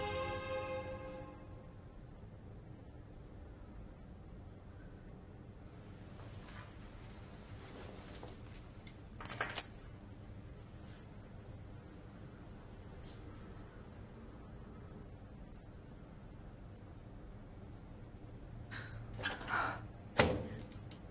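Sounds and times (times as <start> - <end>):
sustained tone: 0.0 - 2.0
steady low rumble and hiss: 0.0 - 21.0
house and car keys jingling: 8.2 - 9.8.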